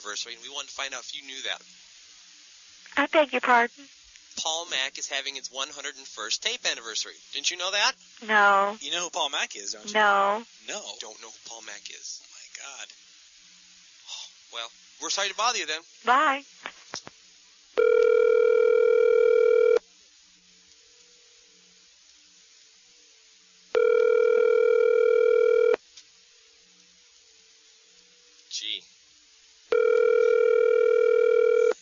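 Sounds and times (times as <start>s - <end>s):
speech: 0.0s - 1.9s, 3.0s - 13.0s, 14.5s - 17.1s
telephone ringing unanswered: 17.8s - 19.8s, 23.8s - 25.8s, 29.7s - 31.7s.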